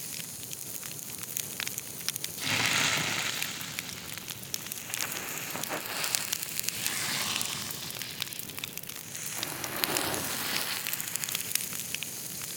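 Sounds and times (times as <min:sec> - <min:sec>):
burnt log ambience: 0:00.1 - 0:12.5.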